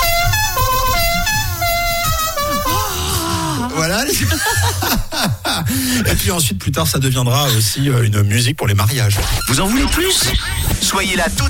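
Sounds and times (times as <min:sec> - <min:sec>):
klaxon horns honking: 0:00.0 - 0:03.6
laughter: 0:02.2 - 0:06.2
speech: 0:05.7 - 0:11.4.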